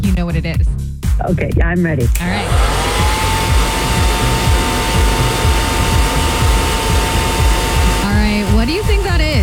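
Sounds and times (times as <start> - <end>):
speech: 0.2 - 2.9
hair dryer running: 2.2 - 9.4.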